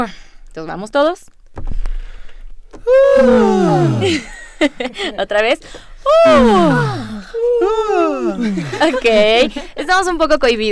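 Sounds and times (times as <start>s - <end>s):
speech: 0.0s - 1.8s, 2.7s - 10.6s
loud drawn-out vocal yawn sliding down in pitch: 2.8s - 4.3s, 6.1s - 8.8s
laughter: 3.2s - 5.2s, 6.3s - 9.6s.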